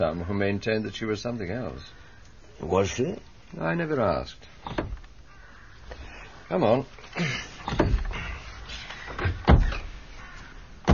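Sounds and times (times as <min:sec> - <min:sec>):
speech: 0:00.0 - 0:02.0, 0:02.6 - 0:04.9, 0:06.5 - 0:07.9
door opening as someone arrives: 0:04.6 - 0:05.1, 0:07.6 - 0:08.3, 0:08.9 - 0:09.9
knocking rattling thumps: 0:04.6 - 0:05.2, 0:07.0 - 0:10.0.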